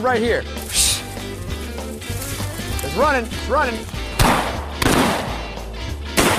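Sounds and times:
speech: 0.0s - 0.8s, 2.9s - 4.0s
gunshots on a bird hunt in a field: 4.2s - 5.5s, 6.2s - 6.3s.

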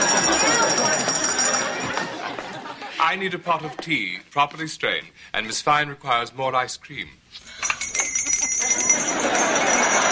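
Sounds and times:
small bells jingling: 0.0s - 2.2s, 7.4s - 10.0s
laughter: 0.0s - 4.0s, 8.2s - 10.0s
speech: 3.1s - 7.2s.

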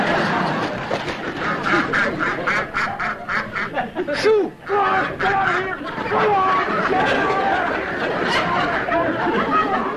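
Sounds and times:
laughter: 0.0s - 9.9s
duck quacking in short raspy calls: 1.2s - 3.9s, 4.7s - 9.1s.

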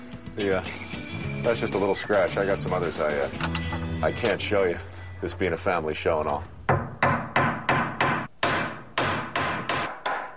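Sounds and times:
speech: 0.4s - 6.6s
hammer pounding nails into wood braces: 6.7s - 10.3s.

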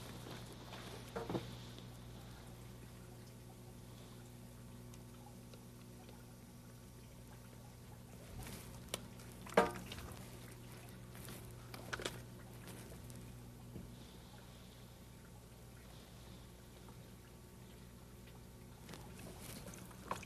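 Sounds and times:
faint hum: 0.0s - 20.2s
cold tap water pouring into a drink container: 6.8s - 13.8s, 18.3s - 20.2s.

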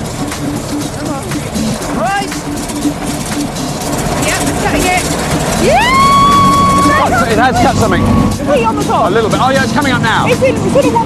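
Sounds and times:
indistinct voices: 0.0s - 11.0s
small petrol lawnmower engines struggling to start: 0.0s - 11.0s
speech: 2.6s - 6.0s, 7.1s - 11.0s
high squeals: 4.2s - 8.7s.

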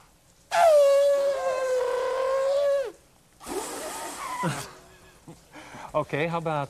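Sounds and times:
person imitating elephant trumpeting: 0.5s - 4.8s
speech: 4.4s - 4.8s, 6.0s - 6.6s.

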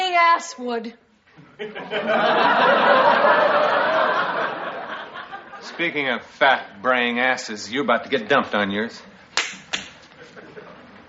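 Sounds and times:
speech: 0.4s - 4.0s, 5.6s - 9.6s
laughter: 1.4s - 6.1s, 10.0s - 11.0s
sharp slap of a hand striking skin: 9.3s - 10.2s.

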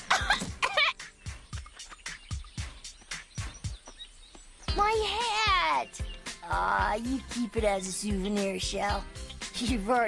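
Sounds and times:
harsh coughing: 0.0s - 1.0s
speech: 4.8s - 10.0s.

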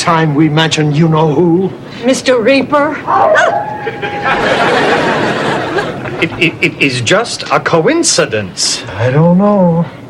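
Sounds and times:
speech: 0.0s - 5.5s, 6.2s - 10.0s
dog barking and yipping excitedly: 3.1s - 3.8s
laughter: 3.6s - 7.0s.

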